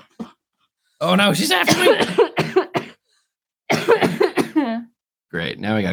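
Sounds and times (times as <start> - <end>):
speech: 1.0 - 2.3, 5.3 - 5.9
harsh hacking coughing fit from bronchitis: 1.4 - 3.0, 3.7 - 4.8.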